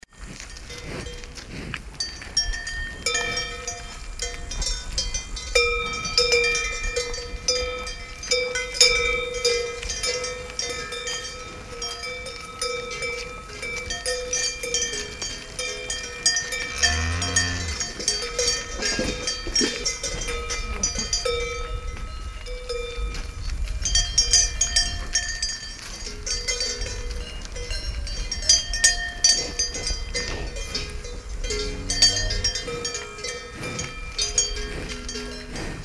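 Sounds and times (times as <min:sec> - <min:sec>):
cows in a bucolic forest in Ruhpolding Germany: 0:00.1 - 0:35.8.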